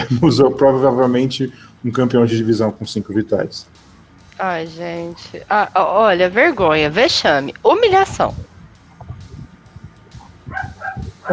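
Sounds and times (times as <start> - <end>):
speech: 0.1 - 3.8, 4.4 - 8.5
small dog barking: 10.2 - 11.3.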